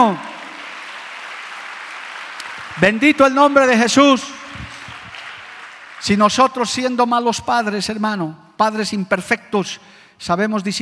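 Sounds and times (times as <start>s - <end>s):
speech: 0.0s - 0.3s, 2.8s - 4.4s, 6.0s - 10.7s
audience applauding: 0.0s - 6.7s.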